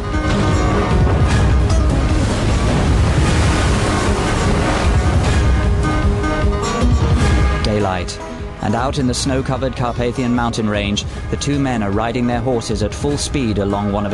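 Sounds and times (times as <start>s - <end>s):
storm wind roaring at sea at night: 0.3s - 7.6s
dense low rumbling surf: 0.3s - 9.6s
storm waves roaring at sea around a huge sailing ship at night: 0.4s - 9.4s
speech: 8.0s - 14.1s.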